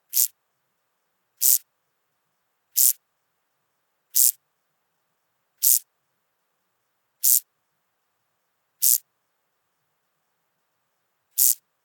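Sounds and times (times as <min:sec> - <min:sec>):
duetting crickets singing a calling song: 0:00.1 - 0:00.3, 0:01.4 - 0:01.6, 0:02.8 - 0:03.0, 0:04.2 - 0:04.4, 0:05.6 - 0:05.8, 0:07.2 - 0:07.4, 0:08.8 - 0:09.0, 0:11.4 - 0:11.6.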